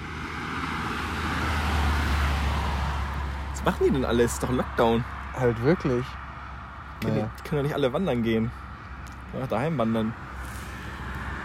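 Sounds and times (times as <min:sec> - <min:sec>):
cars passing on a road: 0:00.0 - 0:11.4
speech: 0:03.6 - 0:06.2, 0:07.0 - 0:08.7, 0:09.3 - 0:10.3.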